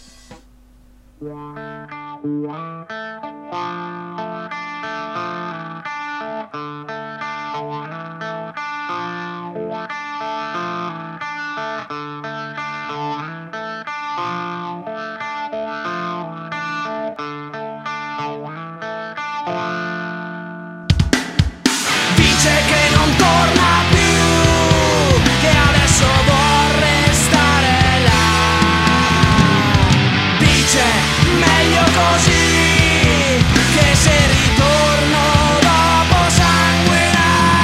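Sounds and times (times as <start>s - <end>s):
brief noisy burst: 0.0s - 1.2s, 21.8s - 37.6s
speech: 1.2s - 4.2s
rock song with thick distorted electric guitars: 1.2s - 37.6s.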